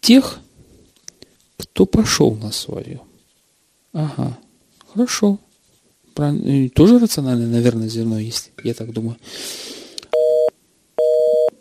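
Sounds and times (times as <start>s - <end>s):
speech: 0.0s - 0.4s, 1.8s - 3.1s, 3.9s - 5.4s, 6.2s - 9.7s
faint noise: 0.0s - 11.6s
telephone busy signal tone: 10.1s - 11.6s.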